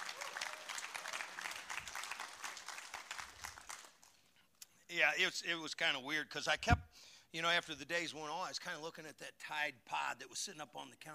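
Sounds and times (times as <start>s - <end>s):
audience applauding: 0.0s - 4.2s
speech: 4.9s - 11.1s.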